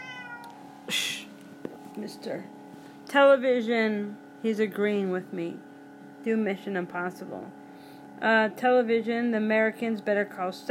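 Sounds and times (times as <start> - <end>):
cat meowing: 0.0 - 0.6
speech: 0.9 - 1.2, 2.0 - 7.6, 8.2 - 10.6.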